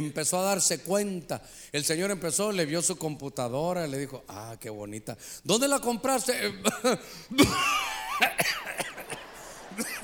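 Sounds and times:
speech: 0.0 - 8.9
person coughing forcefully: 6.4 - 10.0
laughter: 7.4 - 10.0.

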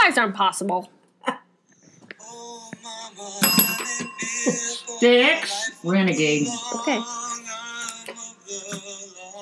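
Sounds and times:
speech: 0.2 - 1.0, 3.2 - 7.3
tabletop bell ringing: 3.4 - 5.4.

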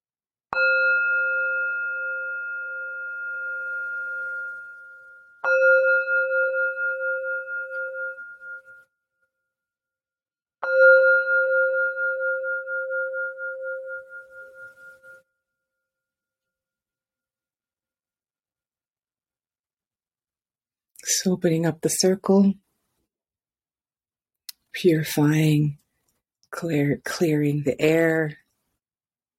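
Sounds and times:
meditation bell ringing: 0.5 - 9.7, 10.6 - 16.2
speech: 21.2 - 22.6, 24.8 - 25.8, 26.5 - 28.4.

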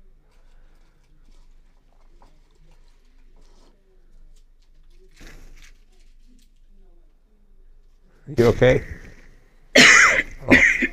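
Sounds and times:
speech: 8.3 - 9.0
person with allergies coughing: 9.8 - 10.9.

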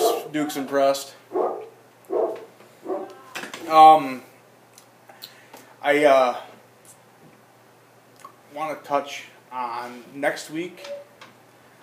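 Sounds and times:
dog barking with woofs: 0.0 - 0.4, 1.3 - 3.2
speech: 0.3 - 1.4, 3.7 - 4.3, 5.8 - 6.5, 8.5 - 11.1.

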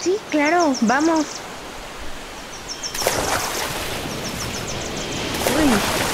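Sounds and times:
speech: 0.0 - 1.4
ocean waves breaking on the shore: 1.4 - 6.1.

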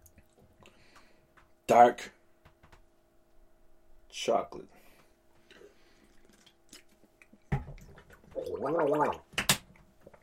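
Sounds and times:
speech: 1.7 - 2.2, 4.2 - 4.8, 8.4 - 9.3
person gargling water after eating dark chocolate: 8.3 - 9.3.

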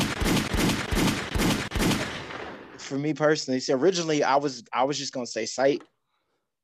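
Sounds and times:
rapid bursts of gunfire: 0.0 - 2.9
speech: 2.9 - 5.9.

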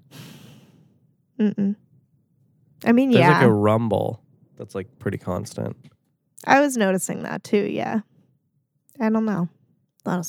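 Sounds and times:
nasal breath on microphone: 0.1 - 0.9
speech: 1.4 - 1.8, 2.8 - 8.1, 9.0 - 10.2
person humming: 3.2 - 3.9
laughter: 3.2 - 4.1, 5.0 - 5.7.

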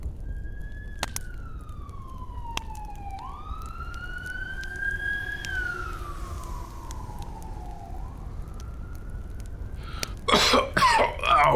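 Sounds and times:
emergency vehicle siren wailing during a fire at a shop: 0.2 - 10.3
person coughing or clearing their throat: 10.2 - 11.5.

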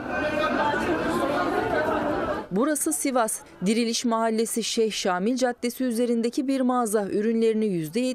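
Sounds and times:
crowd murmur of many overlapping voices rushing into a store in Sivas: 0.0 - 2.6
speech: 2.5 - 8.1.

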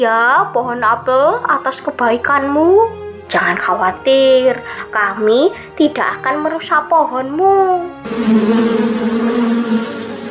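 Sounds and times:
speech: 0.0 - 10.0
honeybee swarm buzzing: 8.0 - 10.2.

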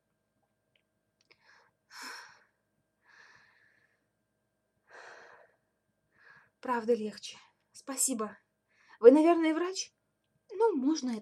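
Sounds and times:
woman breathing slowly and steadily: 1.3 - 4.2, 4.8 - 6.6
speech: 6.6 - 8.4, 9.0 - 10.0, 10.6 - 11.1.

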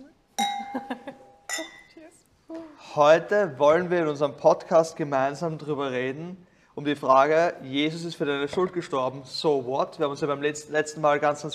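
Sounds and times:
glasses clinking together in a toast: 0.4 - 2.0
speech: 2.5 - 11.5.

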